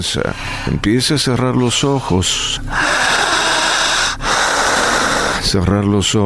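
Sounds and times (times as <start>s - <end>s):
speech: 0.0s - 3.2s, 5.5s - 6.2s
man breathing forcefully during a guided breathing exercise: 0.3s - 0.8s, 2.6s - 5.6s.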